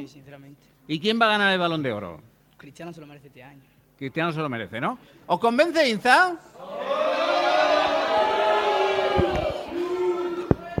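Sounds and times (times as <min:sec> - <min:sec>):
speech: 0:00.0 - 0:07.1
live audience applause: 0:07.4 - 0:10.7.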